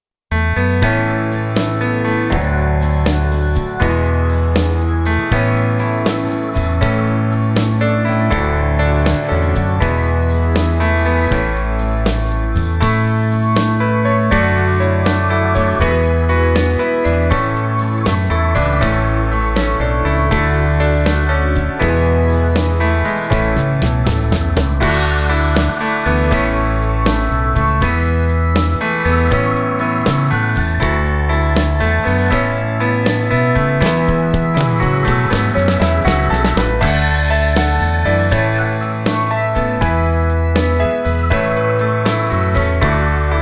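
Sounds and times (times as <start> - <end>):
organ: 0.5 - 43.4
shuffle ballad music mix: 0.6 - 43.4.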